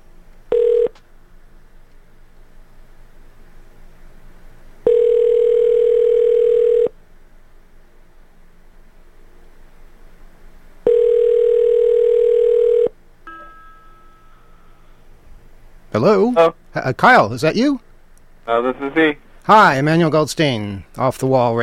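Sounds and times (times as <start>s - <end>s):
buzzing telephone line tone: 0.5s - 1.0s, 4.8s - 6.9s, 10.8s - 15.0s
speech: 16.0s - 17.9s, 18.5s - 21.6s.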